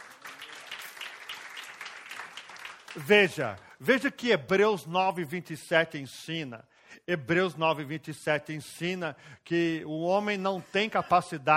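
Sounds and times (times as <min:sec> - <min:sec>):
audience applause: 0:00.0 - 0:03.8
speech: 0:02.9 - 0:11.5.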